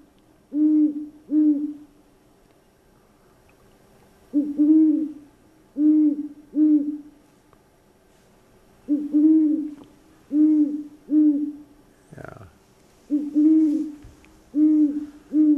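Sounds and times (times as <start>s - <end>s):
great horned owl hooting: 0.5s - 2.0s, 4.3s - 7.2s, 8.8s - 12.4s, 13.0s - 15.5s.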